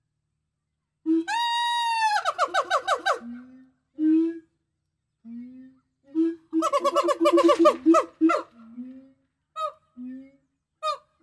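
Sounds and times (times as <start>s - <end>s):
gibbon calls with low hoots and harsh harmonic notes: 1.1s - 3.4s, 6.2s - 8.6s, 10.8s - 11.2s.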